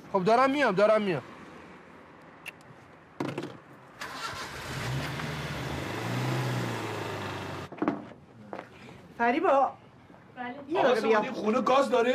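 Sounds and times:
speech: 0.1 - 1.3, 9.2 - 9.8, 10.4 - 12.1
car engine starting, revving and driving off: 4.0 - 7.7.

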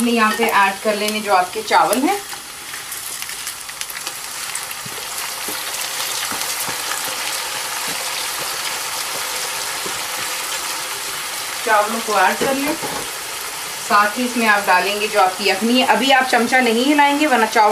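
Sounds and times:
speech: 0.0 - 2.4, 11.7 - 13.1, 13.9 - 17.7
chicken sizzling as it fries in a pan: 0.0 - 17.7.

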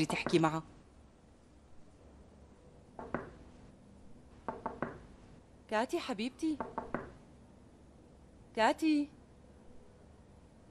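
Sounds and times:
speech: 0.0 - 0.8, 5.7 - 6.8, 8.6 - 9.2
knuckles knocking on a bedroom door: 3.0 - 3.4, 4.4 - 5.1, 6.6 - 7.2.

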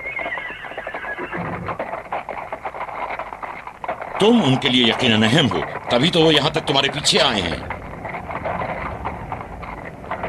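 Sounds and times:
faint outdoor rustle: 0.0 - 10.2
horse hooves clip-clopping: 0.0 - 10.2
speech: 4.2 - 7.7.

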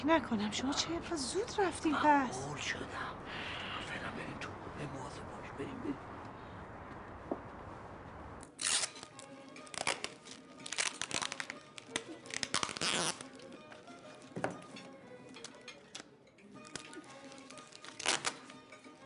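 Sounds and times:
speech: 0.0 - 3.6, 4.2 - 6.0
gift wrapping paper crinkling, rustling and tearing: 8.6 - 13.6, 16.6 - 18.6.

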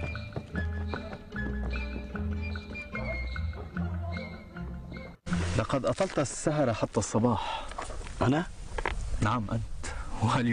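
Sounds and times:
horse hooves clip-clopping: 0.0 - 3.7
speech: 5.6 - 8.6, 9.2 - 10.5.

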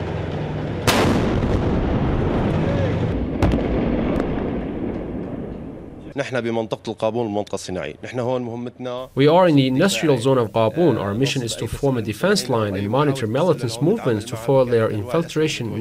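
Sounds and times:
Syrian army artillery and tank fire on militant positions in an industrial zone: 0.0 - 6.1
sustained low roar of artillery: 0.0 - 6.2
speech: 6.2 - 15.7.

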